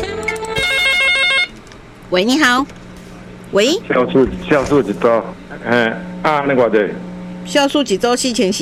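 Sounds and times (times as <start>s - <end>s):
telephone ringtone with a repeating electronic melody: 0.2s - 1.6s
speech: 2.1s - 2.8s, 3.5s - 8.5s.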